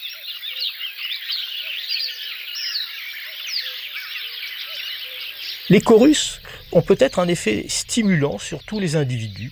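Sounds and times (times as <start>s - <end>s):
marsh warbler singing chattering mimicking song: 0.0s - 9.5s
speech: 0.6s - 1.0s, 5.7s - 9.5s
common cuckoo calling faintly: 3.2s - 9.5s.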